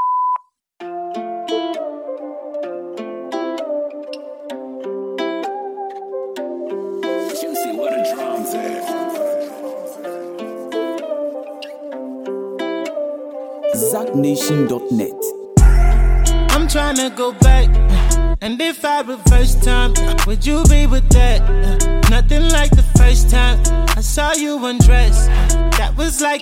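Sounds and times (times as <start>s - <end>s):
voicemail tone after recorded message: 0.0s - 0.4s, 13.8s - 15.4s
music: 0.8s - 26.4s
speech: 14.2s - 15.4s, 16.7s - 26.4s.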